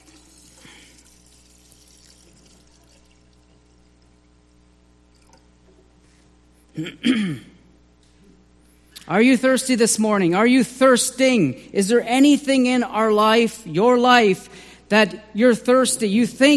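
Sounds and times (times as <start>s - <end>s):
water pouring in a faint steady stream: 0.0s - 5.5s
speech: 6.8s - 7.5s, 9.1s - 16.5s.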